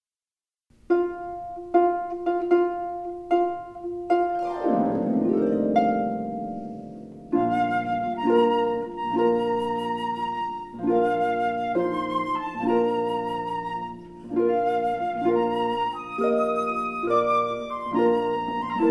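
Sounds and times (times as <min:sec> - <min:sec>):
harp playing a wedding march: 0:00.8 - 0:18.9
flute playing a wedding march: 0:05.8 - 0:18.9.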